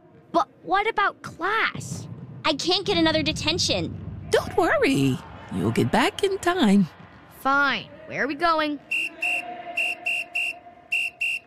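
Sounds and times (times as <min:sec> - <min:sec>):
speech: 0:00.7 - 0:09.1
person whistling short high notes: 0:08.9 - 0:11.4.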